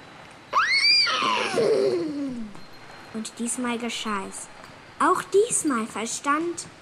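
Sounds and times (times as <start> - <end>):
horse neighing: 0.5 - 2.5
speech: 3.2 - 6.8.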